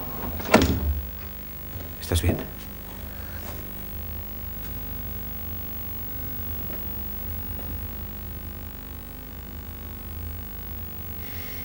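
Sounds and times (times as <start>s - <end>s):
door creaking open: 0.0s - 2.0s
low steady room rumble: 0.0s - 11.6s
speech: 2.1s - 2.7s.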